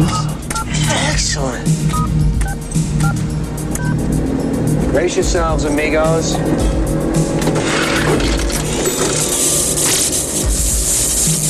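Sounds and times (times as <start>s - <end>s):
steady rumbling hiss: 0.0s - 11.4s
speech: 1.3s - 3.2s, 5.0s - 8.6s
two-tone keypad dialing beeps from a phone booth: 1.9s - 3.2s, 3.8s - 4.0s.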